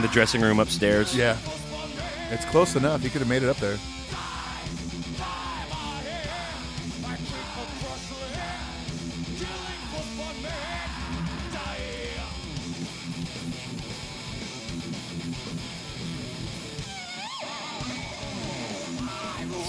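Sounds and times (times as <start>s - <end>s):
speech: 0.0s - 1.6s, 2.3s - 4.2s
concert crowd roar: 0.0s - 2.6s, 4.0s - 12.8s, 17.2s - 19.6s
live concert bass guitar solo: 0.0s - 19.6s.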